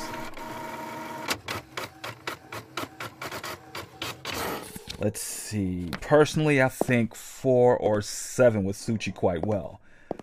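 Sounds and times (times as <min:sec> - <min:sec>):
printer whirring and clattering while printing reference images: 0:00.0 - 0:05.1
speech: 0:05.0 - 0:09.8.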